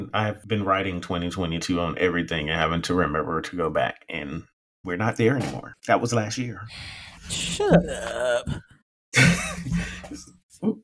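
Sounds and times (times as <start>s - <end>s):
speech: 0.0s - 10.8s
person clearing throat roughly, nearly coughing: 7.5s - 10.2s.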